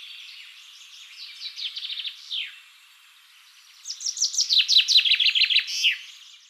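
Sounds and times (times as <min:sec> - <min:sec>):
Fringilla coelebs common chaffinch singing: 0:00.0 - 0:02.6, 0:03.2 - 0:06.4.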